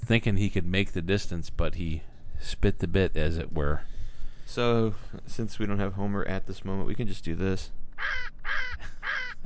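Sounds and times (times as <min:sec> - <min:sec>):
speech: 0:00.1 - 0:03.9, 0:04.5 - 0:09.4
harsh raspy parrot squawks: 0:08.0 - 0:09.4.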